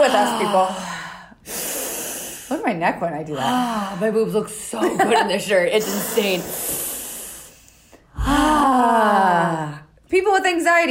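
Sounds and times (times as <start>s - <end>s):
speech: 0.1s - 1.6s, 2.6s - 6.9s, 8.2s - 10.8s
soft breathy exhale: 0.4s - 2.6s, 5.8s - 8.8s
loud inhale turning into a voiced sighing gasp: 0.7s - 2.6s, 5.8s - 8.7s.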